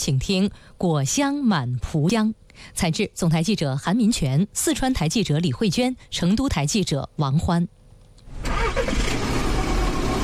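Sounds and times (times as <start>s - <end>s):
speech: 0.0s - 7.8s
car engine starting in the early morning: 8.3s - 10.2s.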